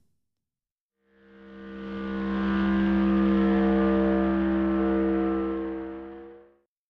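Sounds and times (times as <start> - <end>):
low-pass filtered engine-like humming drone: 1.2 - 6.6.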